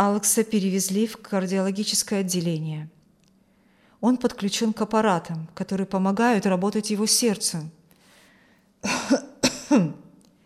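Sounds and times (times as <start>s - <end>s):
speech: 0.0s - 3.0s, 4.0s - 7.8s, 8.8s - 10.0s
man clearing his throat: 8.8s - 10.0s.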